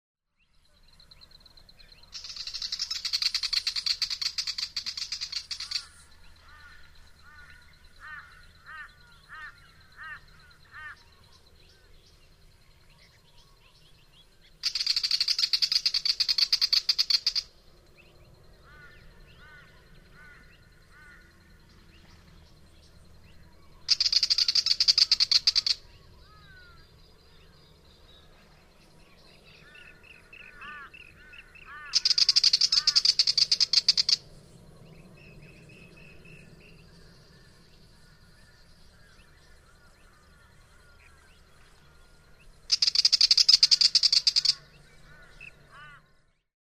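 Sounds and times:
willie wagtail calling: 0:02.0 - 0:11.4, 0:14.5 - 0:17.5, 0:23.6 - 0:27.6, 0:29.5 - 0:42.0, 0:42.6 - 0:46.2.

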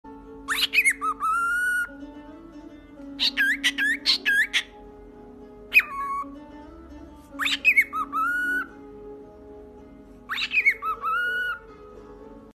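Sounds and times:
cockatiel: 0:00.4 - 0:02.0, 0:03.2 - 0:04.8, 0:05.7 - 0:06.4, 0:07.2 - 0:08.8, 0:10.2 - 0:12.0.

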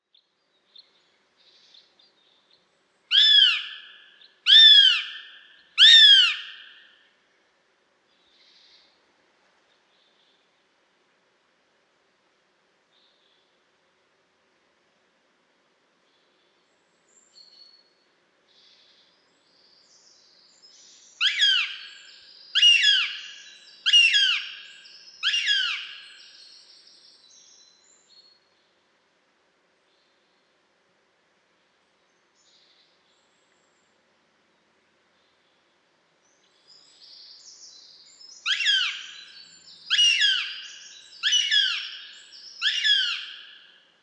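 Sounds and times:
Eurasian goshawk calling: 0:03.1 - 0:06.9, 0:21.2 - 0:26.3, 0:38.4 - 0:43.8.

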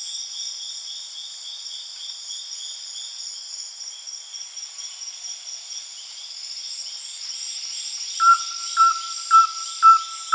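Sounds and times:
steady high-pitched insect noise: 0:00.0 - 0:10.3
rusty-belted tapaculo uttering clipped whistled notes: 0:08.2 - 0:10.3.

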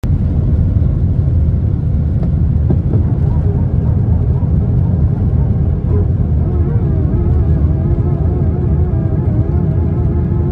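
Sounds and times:
Airbus airplane taking off: 0:00.0 - 0:10.5.

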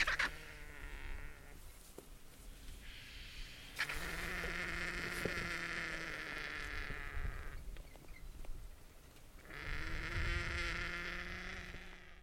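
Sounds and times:
Indian vulture giving hoarse strained calls: 0:00.0 - 0:01.6, 0:02.8 - 0:07.6, 0:09.4 - 0:12.2.

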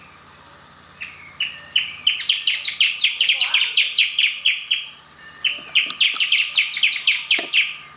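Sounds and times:
steady background hum: 0:00.0 - 0:07.9
Band-tailed hornero giving fast shrill rattling calls: 0:01.0 - 0:07.9.

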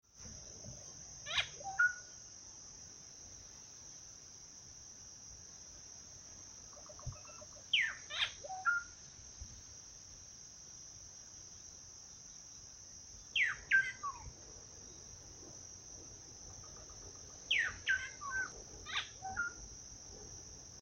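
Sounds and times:
solitary cacique calling: 0:06.7 - 0:08.9, 0:13.4 - 0:14.3, 0:16.5 - 0:19.6.

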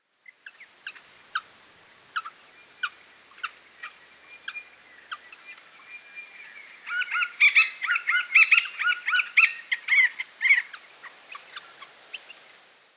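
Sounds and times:
Hall's babbler calling: 0:06.8 - 0:11.8.

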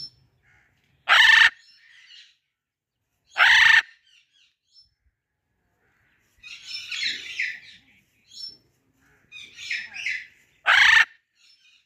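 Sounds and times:
macaw grating squawk: 0:00.4 - 0:02.2, 0:03.3 - 0:04.0, 0:09.0 - 0:11.2.

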